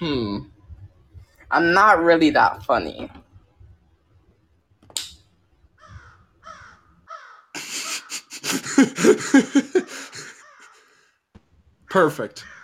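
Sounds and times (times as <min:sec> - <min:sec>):
speech: 0:00.0 - 0:00.6, 0:01.5 - 0:03.2, 0:08.8 - 0:10.1, 0:11.9 - 0:12.5
crow cawing: 0:05.8 - 0:08.0, 0:09.7 - 0:11.1, 0:12.4 - 0:12.6
laughter: 0:07.6 - 0:10.7.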